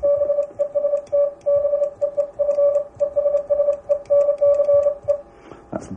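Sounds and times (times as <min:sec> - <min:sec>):
Morse code beeping tone keyed in dots and dashes: 0:00.0 - 0:05.3.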